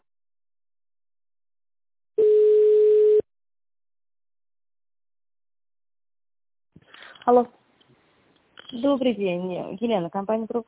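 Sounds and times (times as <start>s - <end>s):
telephone ringback tone while a call is being transferred: 2.2s - 3.2s
speech: 7.3s - 7.6s, 8.9s - 10.6s.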